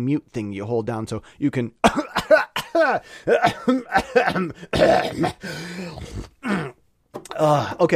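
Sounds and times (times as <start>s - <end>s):
speech: 0.0s - 2.1s, 2.8s - 6.7s, 7.4s - 7.9s
person coughing: 1.8s - 6.8s
person clearing throat: 1.8s - 7.6s
throaty voiced grunts: 2.4s - 7.8s.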